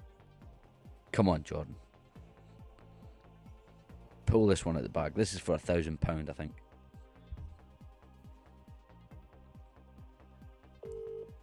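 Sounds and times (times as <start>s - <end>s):
speech: 1.2s - 1.8s, 4.3s - 6.6s
phone call ringing tone: 10.8s - 11.4s.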